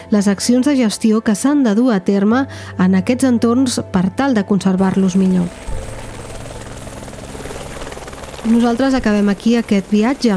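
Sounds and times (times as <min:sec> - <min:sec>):
speech: 0:00.1 - 0:05.8, 0:08.4 - 0:10.3
helicopter rotor thrumming: 0:04.8 - 0:10.3.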